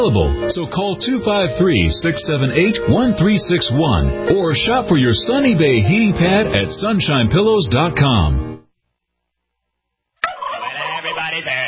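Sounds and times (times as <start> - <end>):
speech: 0.0 - 8.5
turkey gobbling: 10.2 - 11.6.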